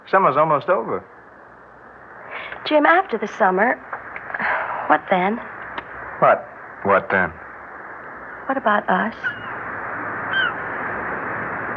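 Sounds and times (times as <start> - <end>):
steady broadband noise: 0.0 - 11.7
speech: 0.1 - 1.2, 2.6 - 3.9, 4.9 - 5.5, 6.2 - 7.4, 8.5 - 9.4
seagull cry at the tide's edge: 9.2 - 9.6, 10.2 - 10.7.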